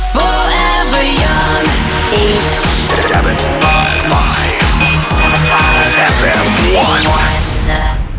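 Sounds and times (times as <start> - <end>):
jingle music: 0.1 - 8.0.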